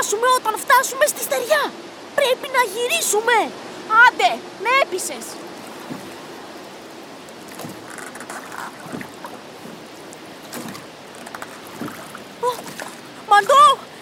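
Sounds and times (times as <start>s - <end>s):
rough sea water churning around a small rowing boat: 0.0s - 14.0s
speech: 0.1s - 6.0s.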